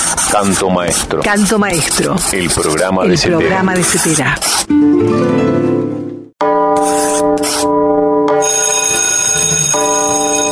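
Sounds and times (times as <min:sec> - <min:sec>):
speech: 0:00.3 - 0:06.6
bell ringing: 0:06.4 - 0:10.5.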